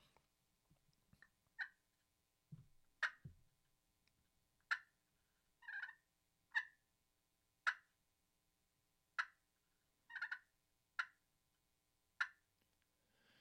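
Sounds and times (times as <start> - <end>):
hen clucks made with a turkey call: 3.0 - 3.2, 5.6 - 6.8, 7.6 - 7.9, 9.2 - 9.4, 10.1 - 11.2, 12.2 - 12.4.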